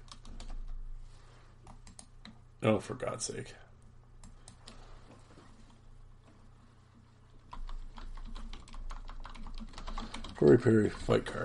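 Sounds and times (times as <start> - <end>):
typing on a computer keyboard during a web search: 0.0 - 0.8, 1.6 - 2.4, 7.5 - 10.6
speech: 2.6 - 3.7, 10.4 - 11.4.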